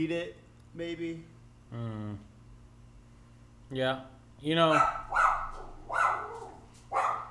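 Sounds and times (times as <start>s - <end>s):
speech: 0.0s - 2.3s, 3.7s - 5.2s
dog barking: 4.7s - 7.2s.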